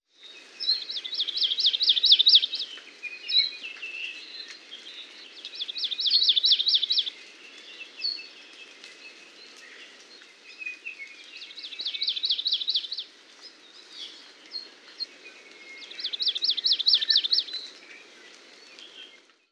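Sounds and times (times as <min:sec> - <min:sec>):
Maui amakihi calling: 0:00.7 - 0:04.2, 0:05.5 - 0:07.2, 0:10.7 - 0:13.1, 0:15.8 - 0:17.7.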